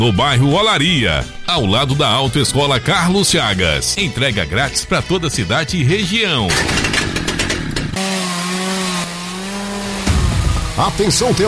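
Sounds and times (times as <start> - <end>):
speech: 0.0 - 7.1, 10.8 - 11.4
chainsaw cutting wood: 6.5 - 11.4.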